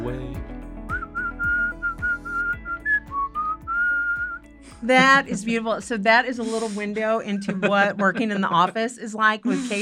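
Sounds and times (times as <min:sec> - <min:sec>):
steady rhythmic music: 0:00.0 - 0:09.8
person whistling a lively tune: 0:00.9 - 0:04.5
laughter: 0:04.8 - 0:05.8, 0:06.4 - 0:09.8
speech: 0:04.8 - 0:09.8.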